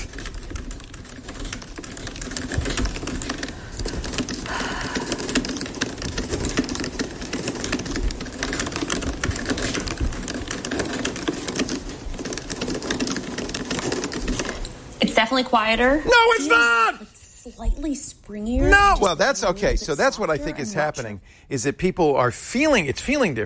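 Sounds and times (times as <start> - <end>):
rapid typing on a Mac laptop keyboard: 0.0 - 14.8
speech: 15.3 - 23.4.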